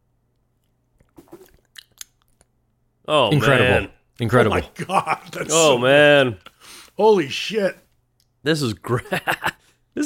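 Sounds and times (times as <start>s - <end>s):
person sipping a creamy coconut drink: 0.6s - 2.5s
speech: 3.1s - 7.8s, 8.4s - 10.0s
laughter: 4.7s - 5.8s, 8.9s - 9.6s.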